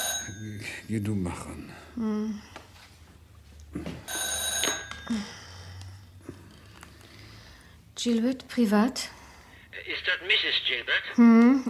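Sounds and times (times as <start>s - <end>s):
old-style telephone bell ringing: 0.0s - 0.5s, 4.1s - 5.4s
noise: 0.0s - 11.6s
speech: 0.9s - 2.6s, 3.7s - 4.0s, 8.0s - 9.2s, 10.2s - 11.6s.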